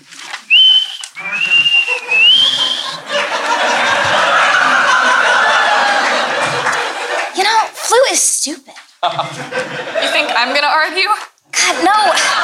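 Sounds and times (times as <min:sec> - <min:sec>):
person whistling a short high tune in a living room: 0:00.5 - 0:03.0
laughter: 0:00.8 - 0:07.4, 0:09.0 - 0:10.7, 0:11.6 - 0:12.4
speech: 0:08.4 - 0:12.3.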